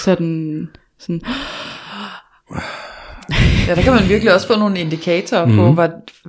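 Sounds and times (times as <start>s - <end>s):
speech: 0.0s - 1.6s, 2.5s - 6.2s
person imitating gasping: 2.5s - 4.4s
laughter: 3.3s - 4.6s, 5.5s - 5.8s.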